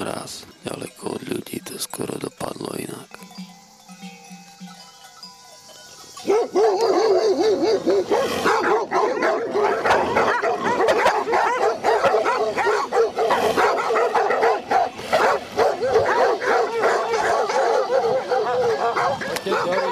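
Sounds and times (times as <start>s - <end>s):
pack of stray dogs barking and yelping: 4.8s - 19.9s.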